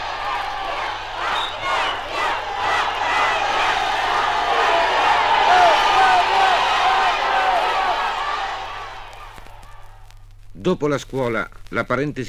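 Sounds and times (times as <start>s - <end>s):
crowd of young spectators cheering and shouting at a youth football match: 0.0s - 10.1s
speech: 10.6s - 12.2s.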